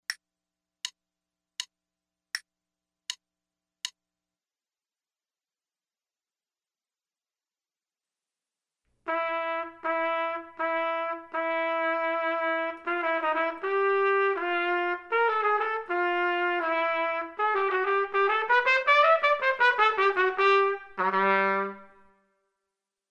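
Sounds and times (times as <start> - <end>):
trumpet playing maestoso: 9.1 - 22.2.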